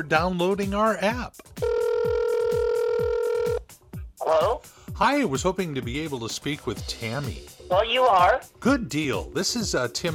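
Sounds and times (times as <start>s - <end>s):
speech: 0.0s - 1.6s, 4.3s - 10.1s
telephone ringback tone on an outgoing call: 1.6s - 3.6s.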